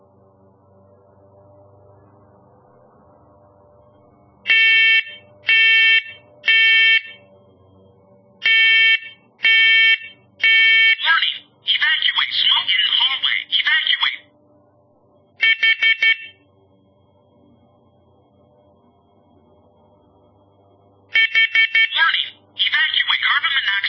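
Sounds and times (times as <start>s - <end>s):
carbon monoxide detector alarm beeps during a press-and-hold test: 4.4s - 7.8s, 8.4s - 11.5s, 15.4s - 16.5s, 21.1s - 22.4s
carbon monoxide detector voice announcement: 10.4s - 14.4s, 21.2s - 23.8s.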